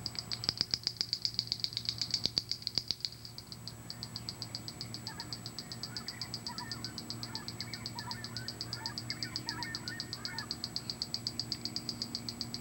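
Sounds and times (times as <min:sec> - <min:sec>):
Wren-like Rushbird song: 0:00.0 - 0:12.6
birds twittering: 0:03.0 - 0:12.6.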